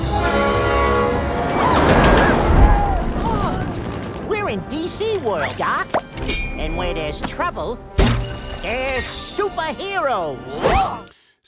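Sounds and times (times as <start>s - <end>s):
runaway train horn blaring a sustained chord: 0.0s - 2.5s
runaway train rumbling: 0.0s - 5.3s
clattering roaring rail noise: 0.3s - 3.0s
speech: 6.8s - 8.0s, 8.6s - 11.4s.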